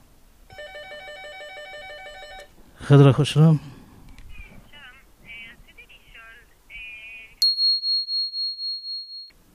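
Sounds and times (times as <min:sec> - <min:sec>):
telephone ringing with trilling electronic bell: 0:00.5 - 0:02.5
speech: 0:02.9 - 0:03.7.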